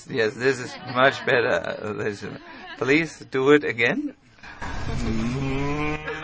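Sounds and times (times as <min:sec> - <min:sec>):
speech: 0:00.0 - 0:05.4
long low moo possibly a human imitating a cow: 0:04.6 - 0:06.2.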